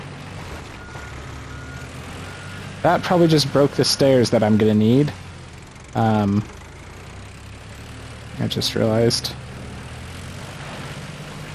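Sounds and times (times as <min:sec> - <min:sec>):
crane engine and machinery noise in the video game: 0:00.0 - 0:11.5
crane vehicle reversing beeps in the video game: 0:00.6 - 0:05.0
speech: 0:02.8 - 0:05.2, 0:06.0 - 0:06.6, 0:08.4 - 0:09.4.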